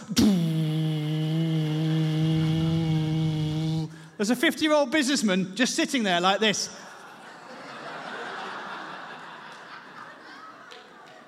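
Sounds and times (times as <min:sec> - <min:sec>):
speech: 0:00.2 - 0:00.5, 0:04.2 - 0:06.8
voice imitating a train toilet door sliding open: 0:00.2 - 0:03.9
laughter: 0:01.8 - 0:03.4, 0:06.8 - 0:11.2.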